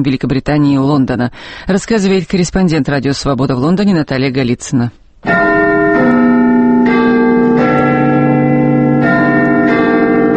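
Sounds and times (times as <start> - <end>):
speech: 0.0 - 5.5
13-ton bell in a 61-metre clock tower chiming deep resonant strikes: 5.2 - 10.3.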